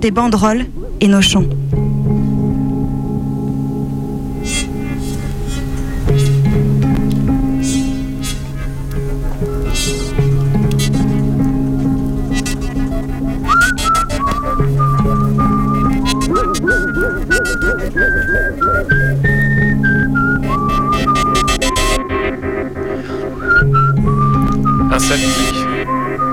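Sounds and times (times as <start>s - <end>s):
speech: 0.0s - 1.6s
musical backing of low bass notes and light percussion: 1.4s - 26.3s
person whistling a bright lilting tune: 12.5s - 22.2s, 23.1s - 26.3s.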